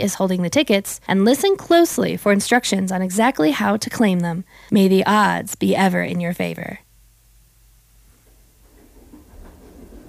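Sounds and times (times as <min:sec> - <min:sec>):
speech: 0:00.0 - 0:06.8
passenger train riding the rails on a morning excursion: 0:08.6 - 0:10.0.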